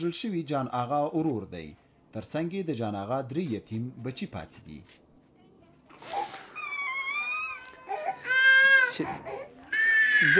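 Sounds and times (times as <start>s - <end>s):
speech: 0.0s - 5.0s, 9.0s - 9.4s, 10.2s - 10.3s
mourning family crying and wailing for a relative killed in an attack: 6.5s - 10.3s.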